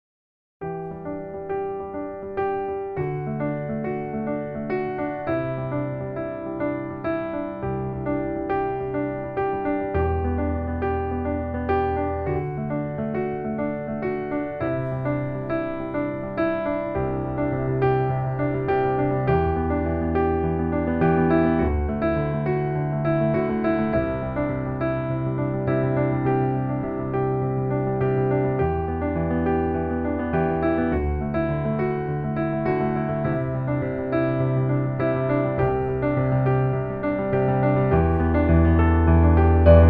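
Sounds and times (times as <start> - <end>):
soft piano: 0.6 - 39.8.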